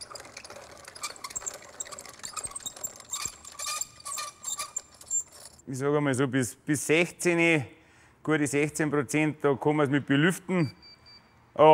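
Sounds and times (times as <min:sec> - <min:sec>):
wheat sample grinding in a small mill for moisture testing: 0:00.0 - 0:05.6
speech: 0:05.7 - 0:10.8, 0:11.6 - 0:11.7.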